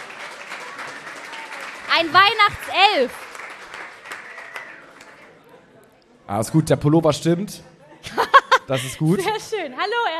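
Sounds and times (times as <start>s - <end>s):
sharp loud claps: 0.0s - 5.2s
audience applause at a live stage show: 0.0s - 5.4s
speech: 2.0s - 3.2s, 6.3s - 10.1s
laughter: 7.9s - 9.6s.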